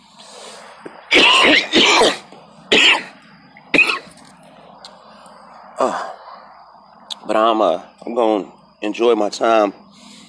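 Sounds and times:
harsh hacking coughing: 1.1s - 3.1s, 3.7s - 4.1s
speech: 5.8s - 6.0s, 7.3s - 9.8s.

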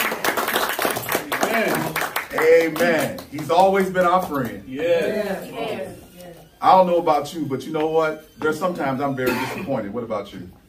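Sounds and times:
group clapping: 0.0s - 5.3s
speech: 1.6s - 6.0s, 6.6s - 10.6s
voices calling out: 4.7s - 9.5s.

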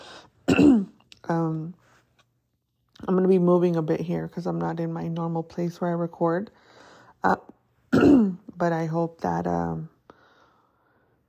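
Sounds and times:
person clearing throat: 0.5s - 1.0s, 8.0s - 8.4s
speech: 1.3s - 1.8s, 3.0s - 9.9s.

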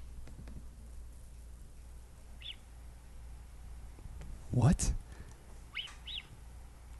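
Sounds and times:
low steady rumble: 0.0s - 6.9s
mountain lion whistling chirps: 2.4s - 2.6s, 5.7s - 6.4s
speech: 4.5s - 5.0s.

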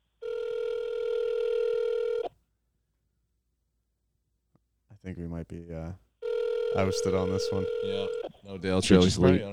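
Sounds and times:
telephone ringing tone while placing a call: 0.2s - 2.3s, 6.2s - 8.3s
speech: 5.1s - 6.1s, 6.8s - 9.5s.

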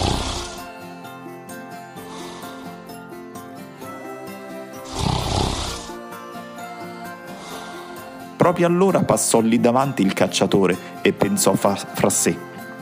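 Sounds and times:
loud rasping snores: 0.0s - 0.8s, 2.1s - 2.8s, 4.8s - 6.0s, 7.4s - 8.1s
speech: 8.5s - 12.6s.

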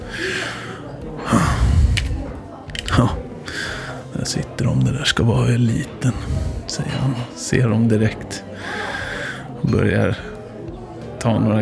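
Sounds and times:
heavy breathing: 0.0s - 4.1s, 6.0s - 7.4s, 8.4s - 10.6s
speech: 4.2s - 8.8s, 9.6s - 10.4s, 11.2s - 11.6s.

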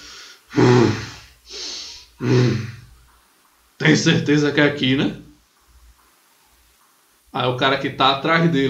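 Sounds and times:
voice imitating a Minotaur snorting: 0.5s - 1.6s, 2.2s - 2.9s
speech: 3.8s - 5.2s, 7.4s - 8.6s.

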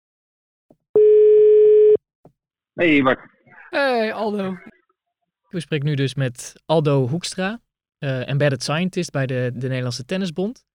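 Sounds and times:
telephone ring tone heard while calling someone: 1.0s - 2.0s
speech: 2.8s - 4.8s, 5.5s - 10.7s.

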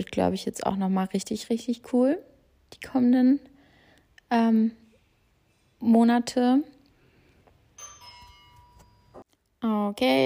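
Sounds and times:
speech: 0.0s - 3.5s, 4.3s - 4.8s, 5.8s - 6.8s, 9.6s - 10.2s
electronic doorbell chime: 7.8s - 9.2s.

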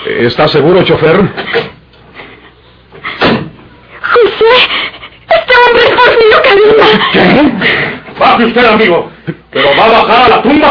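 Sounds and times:
speech: 0.1s - 1.7s, 8.4s - 10.7s
laughter: 1.3s - 3.2s, 4.4s - 10.6s
car door thud: 3.2s - 3.6s.

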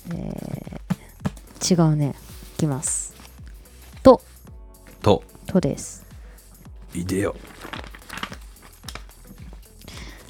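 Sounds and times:
speech: 1.6s - 3.0s, 4.0s - 4.3s, 5.0s - 6.0s, 6.9s - 7.5s
dictionary pages being flipped: 2.2s - 4.4s, 7.0s - 10.2s.

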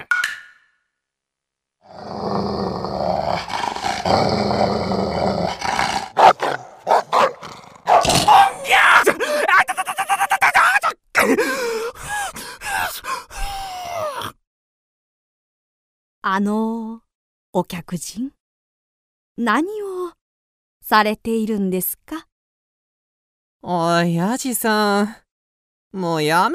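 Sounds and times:
dog growling: 1.8s - 9.2s
dog snarling barks and yips: 6.2s - 8.6s
person exclaiming: 8.1s - 14.3s
speech: 17.6s - 18.4s, 19.4s - 19.9s, 20.9s - 22.2s, 23.7s - 25.2s, 25.9s - 26.5s.

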